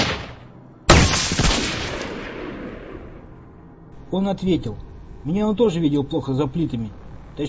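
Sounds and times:
rifle shot: 0.0s - 3.4s
speech: 4.1s - 7.4s.

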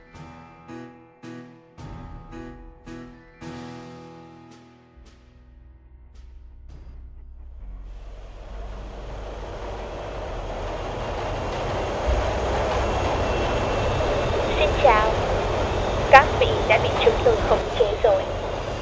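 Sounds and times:
runaway train with broken brakes running on rails: 7.4s - 18.8s.

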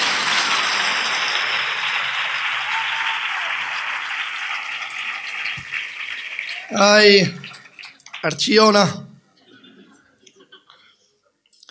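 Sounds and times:
audience applause at a carnival opening-speech event in Archidona: 0.0s - 9.0s
speech: 6.7s - 7.4s, 8.2s - 9.0s.

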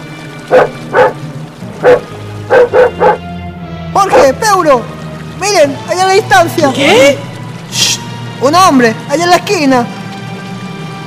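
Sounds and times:
dog barking: 0.5s - 1.2s, 1.8s - 3.2s
speech: 1.8s - 2.0s, 4.7s - 10.0s.

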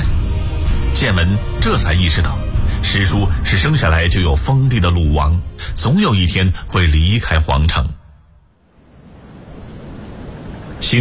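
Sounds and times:
speech: 1.0s - 8.0s, 10.8s - 11.0s
ocean waves lapping against a ship at night: 8.6s - 11.0s.

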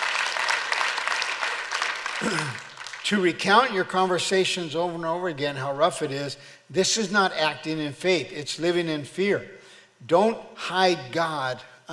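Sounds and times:
audience clapping: 0.0s - 3.7s
speech: 2.2s - 11.9s.

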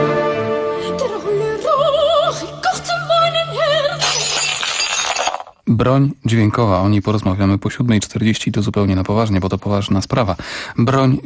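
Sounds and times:
operatic diva singing high wavering notes with strong vibrato: 0.7s - 4.0s
drinking glasses shattering: 4.0s - 5.6s
speech: 5.8s - 11.2s.

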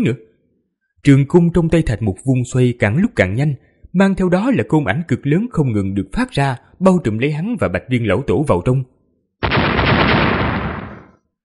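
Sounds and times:
speech: 0.0s - 0.3s, 1.0s - 9.5s
huge explosive blast: 9.4s - 11.2s.

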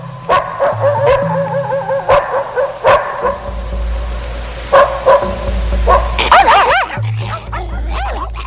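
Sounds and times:
pack of eight dogs barking: 0.2s - 3.5s, 4.7s - 8.4s.

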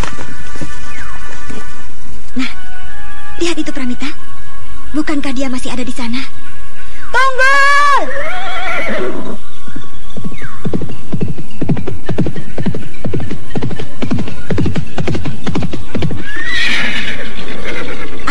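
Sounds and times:
horse hooves clip-clopping: 0.0s - 2.4s, 9.8s - 18.2s
speech: 3.4s - 4.2s, 5.0s - 6.5s, 7.1s - 9.4s
horse neighing: 8.0s - 9.4s, 16.2s - 18.2s.

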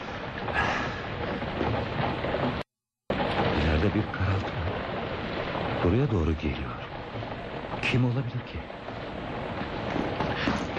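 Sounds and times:
heavy rain pouring down by a house: 0.0s - 10.7s
speech: 3.8s - 4.6s, 5.8s - 6.9s, 7.8s - 8.8s.

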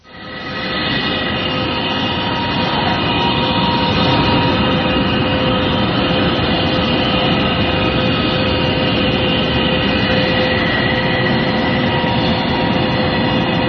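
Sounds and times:
mysterious low metallic hum recorded in Canada: 0.0s - 13.6s.

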